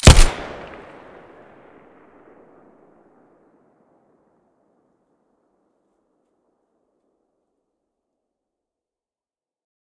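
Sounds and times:
Colt 1911 pistol muzzle blast: 0.0 - 0.9.

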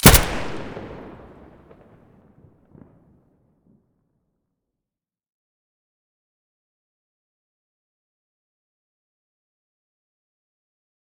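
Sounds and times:
Abakan rifle muzzle gunshot: 0.0 - 1.5.

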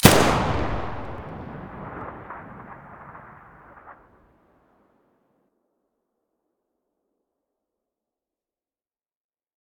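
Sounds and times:
SA80 rifle muzzle blast: 0.0 - 4.1.

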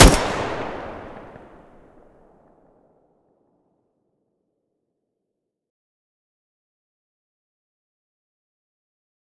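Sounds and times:
Groza rifle muzzle blast: 0.0 - 1.8.

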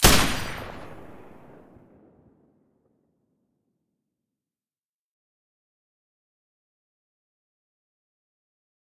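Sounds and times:
M249 machine gun with silencer firing: 0.0 - 1.7.

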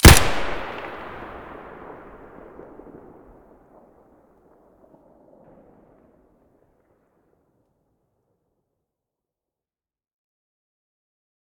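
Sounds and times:
SKS rifle muzzle blast: 0.0 - 2.9.

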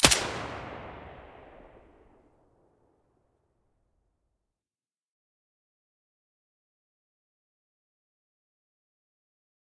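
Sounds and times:
silenced weapons firing in stereo: 0.0 - 2.1.

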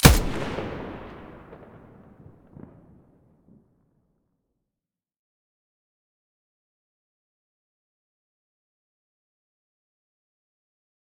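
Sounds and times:
weapon muzzle blast: 0.0 - 2.2.

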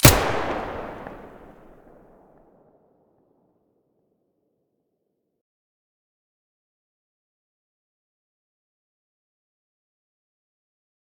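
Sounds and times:
Vihr weapon muzzle blast: 0.0 - 2.0.

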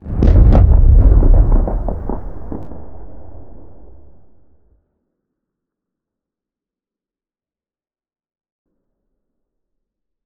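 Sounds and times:
distant rocket explosion: 0.0 - 4.7.

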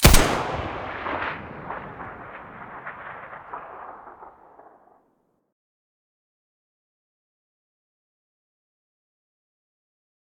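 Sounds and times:
SA58 rifle muzzle gunshot: 0.0 - 4.8.

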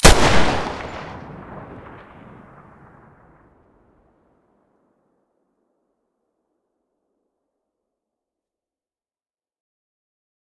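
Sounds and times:
Desert Eagle pistol muzzle blast: 0.0 - 2.0.

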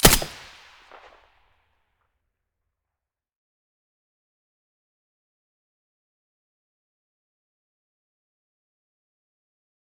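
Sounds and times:
M4A1 rifle with silencer firing: 0.0 - 1.2.

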